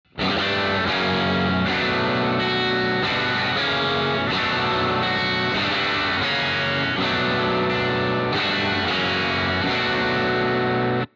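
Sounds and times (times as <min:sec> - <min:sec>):
crunch guitar: 0:00.1 - 0:11.1.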